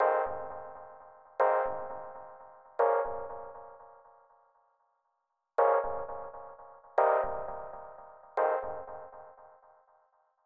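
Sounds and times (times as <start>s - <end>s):
classic keys melody loop in F minor: 0.0s - 4.2s, 5.6s - 9.8s.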